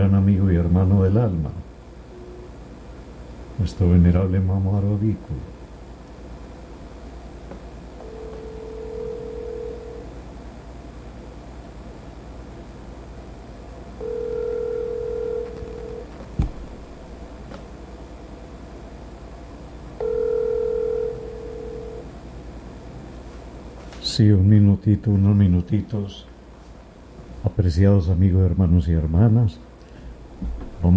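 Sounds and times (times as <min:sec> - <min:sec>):
speech: 0:00.0 - 0:01.6, 0:03.6 - 0:05.6, 0:24.2 - 0:26.3, 0:27.6 - 0:29.7, 0:30.4 - 0:30.9
telephone tones for an incoming call: 0:08.0 - 0:10.1, 0:14.0 - 0:16.1, 0:20.0 - 0:22.1.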